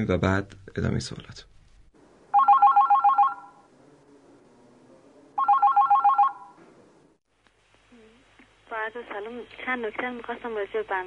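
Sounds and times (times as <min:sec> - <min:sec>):
speech: 0:00.0 - 0:01.5, 0:08.9 - 0:11.0
faint low noise: 0:00.0 - 0:11.0
telephone ringing before a recorded phone call: 0:02.3 - 0:03.6, 0:05.4 - 0:06.6.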